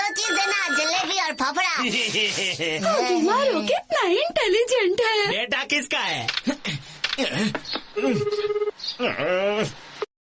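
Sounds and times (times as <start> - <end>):
electronic telephone ring: 0.0 - 1.4
speech: 0.2 - 9.8.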